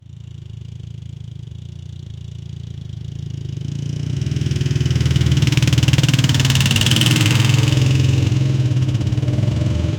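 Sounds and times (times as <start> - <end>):
motorcycle: 0.0 - 9.9.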